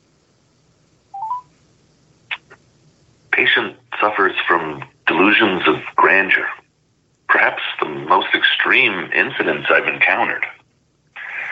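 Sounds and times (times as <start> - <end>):
quick bright telephone keypad beeps: 1.2 - 1.5
short electronic tone: 1.2 - 1.5
speech: 4.0 - 6.6, 7.4 - 10.6.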